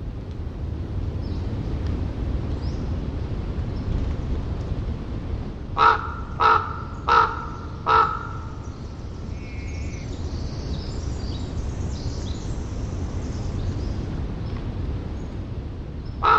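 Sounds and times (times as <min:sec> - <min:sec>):
low rumble of surf on the Oregon coast: 0:00.0 - 0:16.3
wind on a foggy Oregon shore: 0:00.0 - 0:16.3
ravens croaking off a foggy Oregon shore: 0:05.7 - 0:09.6.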